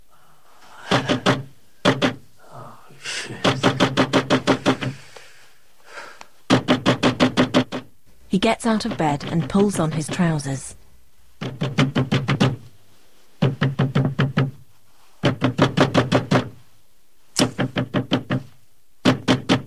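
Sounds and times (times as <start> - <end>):
loud insistent knocking on a front door at night: 0.9 - 2.2, 3.4 - 4.9, 6.5 - 7.9, 11.4 - 12.7, 13.4 - 14.6, 15.2 - 16.6, 17.4 - 19.6
speech: 8.4 - 10.8.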